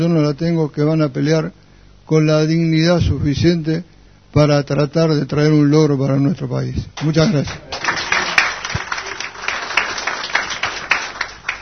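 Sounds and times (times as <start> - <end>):
speech: 0.0 - 7.7
crowd applauding: 7.0 - 11.6.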